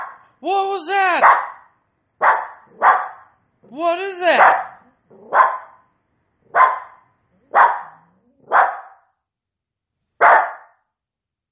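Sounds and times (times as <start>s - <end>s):
dog barking: 0.0s - 0.2s, 1.2s - 3.3s, 4.3s - 5.8s, 6.5s - 9.1s, 10.2s - 10.8s
speech: 0.4s - 1.5s, 3.7s - 4.6s.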